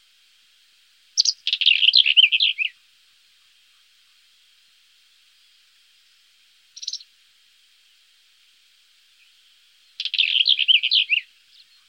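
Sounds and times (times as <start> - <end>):
Black-eared wheatear singing a rasping note and scratchy warble: 1.2 - 2.8, 6.7 - 7.1, 9.1 - 11.8.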